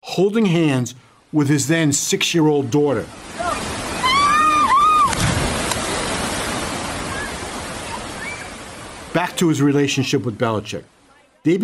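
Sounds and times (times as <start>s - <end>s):
speech: 0.2s - 3.7s, 9.2s - 11.6s
waterfall rushing in Costa Rica: 2.6s - 11.1s
person crying out in a high wavering voice: 3.4s - 5.1s
person diving off a cliff into a waterfall pool: 5.0s - 7.5s.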